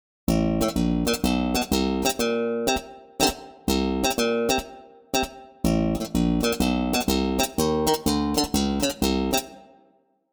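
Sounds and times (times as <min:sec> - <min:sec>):
trip-hop slap bass chord chucks: 0:00.3 - 0:02.4, 0:03.7 - 0:04.6, 0:05.7 - 0:09.4.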